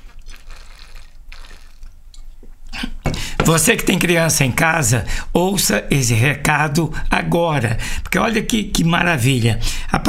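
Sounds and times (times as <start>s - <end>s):
gulp of water: 0.0s - 2.0s
person taking a quick sip of water: 0.0s - 3.0s
speech: 2.8s - 10.0s.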